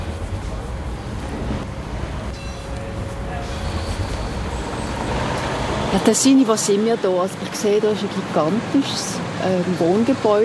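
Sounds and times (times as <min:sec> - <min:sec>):
faint mechanical whine: 0:00.0 - 0:06.1
heavy construction machinery rumbling: 0:00.0 - 0:06.8
heavy passing traffic: 0:00.0 - 0:10.4
speech: 0:05.9 - 0:10.4.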